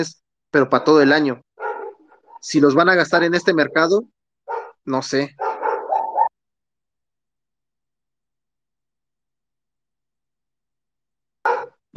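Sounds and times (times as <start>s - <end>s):
speech: 0.0s - 1.4s, 2.4s - 4.1s, 4.8s - 5.4s
dogs fighting outside barking and snarling: 0.7s - 2.6s, 4.4s - 6.4s, 11.4s - 11.9s.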